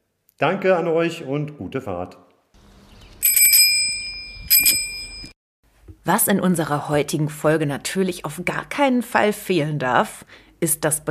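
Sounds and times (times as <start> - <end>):
speech: 0.4 - 2.3, 6.0 - 11.0
bicycle bell from 1950 ringing: 3.2 - 5.4.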